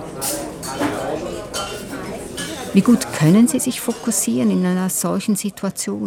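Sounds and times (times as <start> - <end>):
steady murmur of indistinct voices in a busy restaurant: 0.0 - 6.0
dishes and cutlery clinking and clattering in a busy restaurant: 0.1 - 4.7
speech: 2.8 - 6.0.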